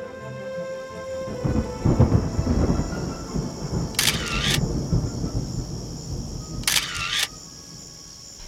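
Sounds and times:
light rain: 0.1 - 8.4
deep roll of thunder: 1.3 - 8.4
camera shutter clicks as photos are taken in the rain: 4.0 - 4.6, 6.7 - 7.4.

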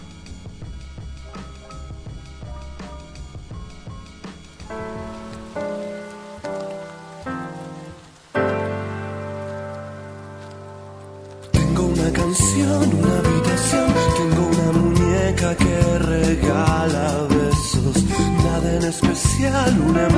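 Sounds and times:
steady rain pattering: 0.0 - 20.1
gentle music chords: 0.6 - 20.1
scattered sharp drips: 4.6 - 12.8.

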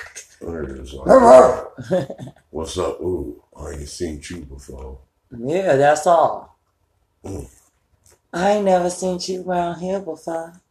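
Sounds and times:
speech: 0.4 - 6.5, 7.2 - 7.6, 8.3 - 10.6
man's voice imitating dogs barking and growling: 0.5 - 1.8.

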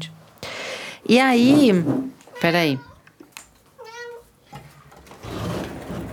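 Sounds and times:
speech: 1.1 - 2.9
rustling and shuffling: 1.3 - 6.1
cat meowing: 2.3 - 3.1, 3.8 - 4.3.

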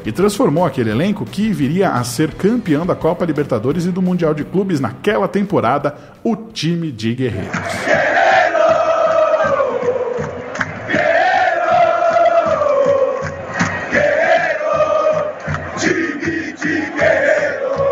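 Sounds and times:
speech: 0.0 - 8.2
large crowd of football fans chanting a cheer in unison: 7.5 - 17.9.

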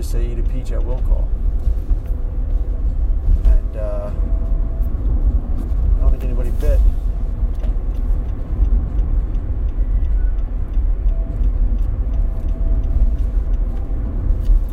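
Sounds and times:
faint regular ticking: 0.0 - 14.7
low engine and road rumble inside a moving car on a highway: 0.0 - 14.7
speech: 0.1 - 2.0, 6.2 - 7.0.

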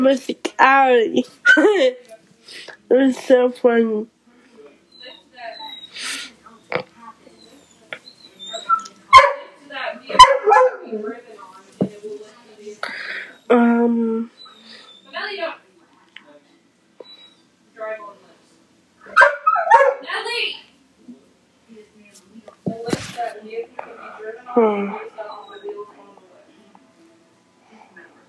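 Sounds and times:
speech: 0.0 - 4.1, 10.9 - 11.3, 12.8 - 14.4, 22.8 - 25.9
dog barking: 9.1 - 9.5, 10.1 - 10.9, 19.1 - 20.1.

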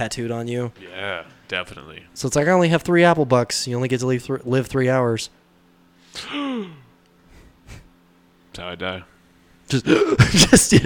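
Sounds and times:
speech: 0.0 - 5.4, 6.2 - 6.8, 8.6 - 9.1, 9.7 - 10.8
loud dramatic breathy gasp in mock shock: 6.1 - 6.9.

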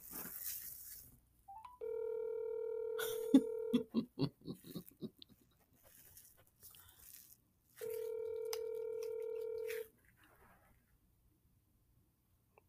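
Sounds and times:
outgoing phone call ringing tone: 1.5 - 3.9, 7.8 - 9.9.

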